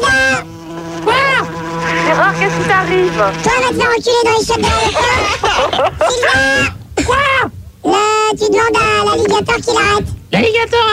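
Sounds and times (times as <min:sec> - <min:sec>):
flies buzzing: 0:00.0 - 0:05.7
speech: 0:02.5 - 0:10.9
laughter: 0:04.6 - 0:06.7.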